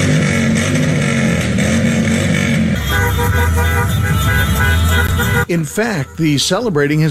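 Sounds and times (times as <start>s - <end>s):
engine noise of cars, vans, pickup trucks and motorcycles: 0.0s - 7.1s
cars, vans, pickup trucks and motorcycles honking in a street celebration: 2.8s - 7.1s
speech: 5.5s - 7.1s.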